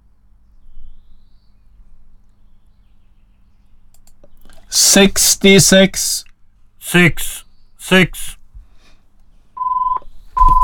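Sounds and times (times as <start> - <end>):
speech: 4.7 - 6.3, 6.9 - 8.4
electronic telephone ringing tone: 9.6 - 10.6.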